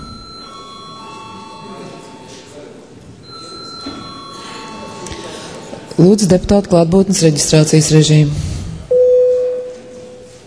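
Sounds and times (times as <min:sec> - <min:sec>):
electric session bell ringing in a parliament chamber: 0:00.0 - 0:02.6, 0:03.2 - 0:06.1
constant murmur of voices in a parliament chamber: 0:00.0 - 0:08.9
speech: 0:06.0 - 0:08.5.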